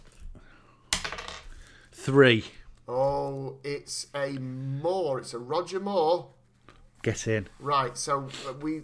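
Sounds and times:
six-sided dice clattering onto a hard surface: 0:00.9 - 0:01.6
speech: 0:02.0 - 0:06.4, 0:07.0 - 0:08.8.

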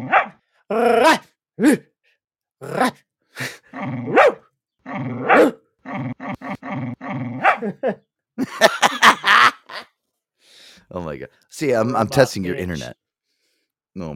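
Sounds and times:
dog barking and growling: 0:00.0 - 0:01.8, 0:02.6 - 0:03.0, 0:03.6 - 0:08.1
speech: 0:00.7 - 0:01.9, 0:02.6 - 0:03.1, 0:11.6 - 0:13.0
laughter: 0:07.6 - 0:09.9.

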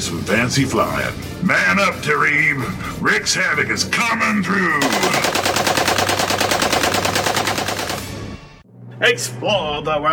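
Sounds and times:
speech: 0:00.0 - 0:05.7, 0:09.0 - 0:10.1
50 caliber machine gun firing from a roof turret: 0:04.8 - 0:08.6.

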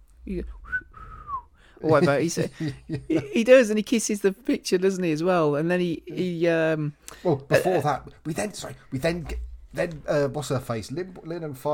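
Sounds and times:
speech: 0:00.2 - 0:00.8, 0:01.8 - 0:11.7
person whistling a short steady mid-pitched note: 0:00.6 - 0:01.7
laughter: 0:01.9 - 0:03.5.

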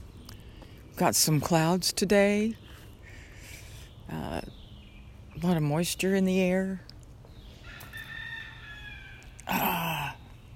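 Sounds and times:
speech: 0:01.0 - 0:02.6, 0:05.4 - 0:06.9
rooster crowing outdoors: 0:07.6 - 0:09.4.

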